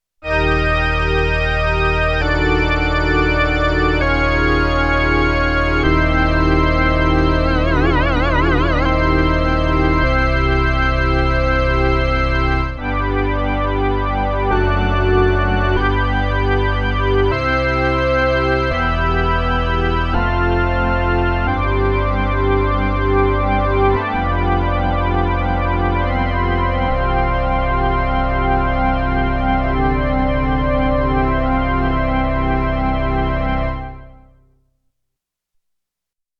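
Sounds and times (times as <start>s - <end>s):
pipe organ sound on a Roland JX-8P synthesizer: 0.2s - 34.4s.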